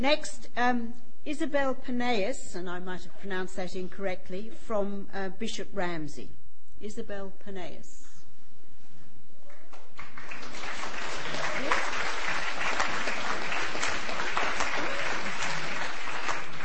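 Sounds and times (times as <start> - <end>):
speech: 0.0 - 8.0
audience applause: 10.0 - 16.6.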